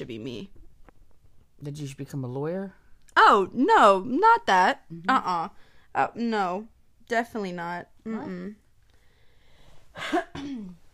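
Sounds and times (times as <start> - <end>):
speech: 0.0 - 0.6, 1.6 - 8.6, 10.0 - 10.8
person coughing: 10.0 - 10.8.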